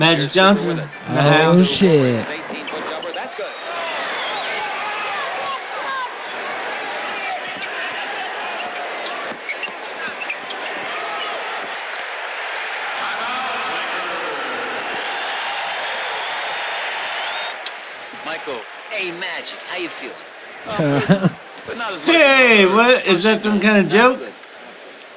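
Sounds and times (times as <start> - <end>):
speech: 0.0 - 2.4, 20.8 - 21.4, 22.5 - 24.3
laughter: 0.0 - 15.8, 17.4 - 25.1
crowd roar with chatter and cheering in a packed basketball arena: 0.0 - 25.1.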